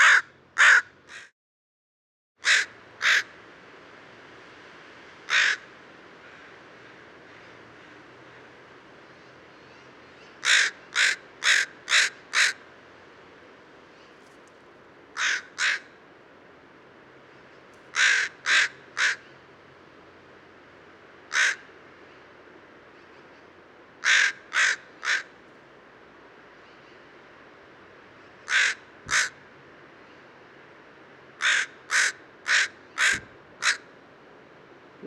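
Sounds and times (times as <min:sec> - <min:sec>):
crow cawing: 0:00.0 - 0:01.3, 0:02.4 - 0:03.3, 0:05.3 - 0:05.7, 0:10.4 - 0:12.6, 0:15.2 - 0:15.9, 0:17.9 - 0:19.2, 0:21.3 - 0:21.7, 0:24.0 - 0:25.3, 0:28.4 - 0:29.4, 0:31.4 - 0:33.9.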